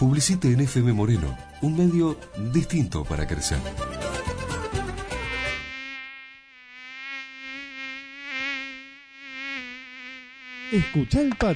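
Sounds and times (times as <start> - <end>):
speech: 0.0 - 4.1, 10.7 - 11.5
mosquito buzzing: 4.0 - 11.5.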